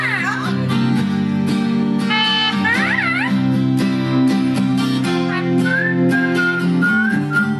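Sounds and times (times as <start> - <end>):
laughter: 0.0 - 1.1, 2.3 - 3.5
steady instrumental music: 0.0 - 7.5
man whistling a tune: 5.5 - 7.5.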